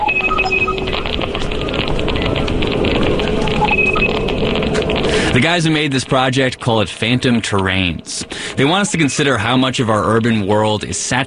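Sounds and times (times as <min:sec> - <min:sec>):
short electronic beeps for router ID numbers: 0:00.0 - 0:02.3, 0:03.3 - 0:04.4
dense noisy background: 0:00.0 - 0:11.2
rapid crackling clicks from Wi-Fi signal sonification: 0:00.0 - 0:11.2
speech: 0:05.4 - 0:11.2.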